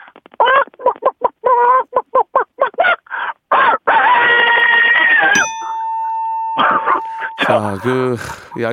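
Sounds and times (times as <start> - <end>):
hen cackling while laying an egg: 0.4 - 5.4, 6.6 - 8.7
steady electronic tone: 5.4 - 8.5
speech: 7.5 - 8.7.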